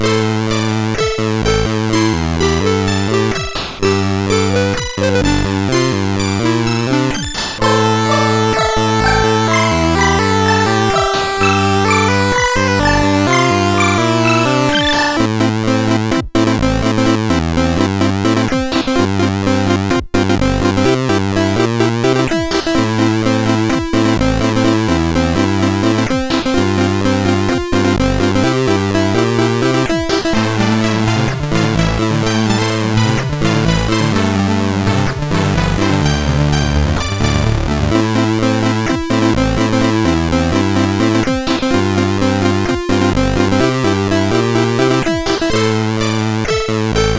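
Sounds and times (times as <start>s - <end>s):
SID 8580R5 chiptune melody: 0.0s - 47.1s.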